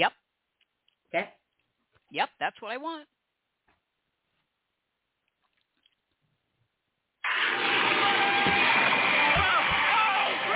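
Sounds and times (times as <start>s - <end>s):
speech: 1.1s - 1.4s, 2.1s - 3.2s
water gushing from a newly built well: 7.2s - 10.5s.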